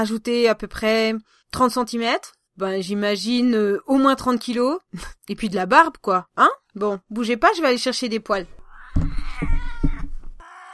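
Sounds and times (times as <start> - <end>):
speech: 0.0 - 8.6
female cat meowing: 8.5 - 10.7.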